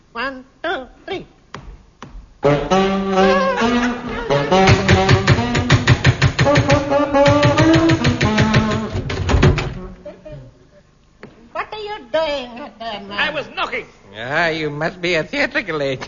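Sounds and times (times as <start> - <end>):
speech: 0.2 - 1.3, 14.6 - 16.0
saxophone practice music: 2.4 - 9.1
quick rhythmic knocking on a door: 4.5 - 9.8.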